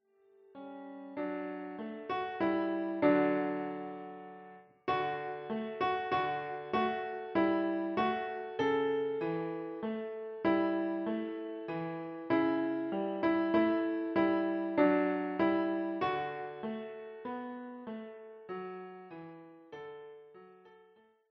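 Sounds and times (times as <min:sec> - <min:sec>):
Christmas carol played on piano: 0:00.0 - 0:21.1.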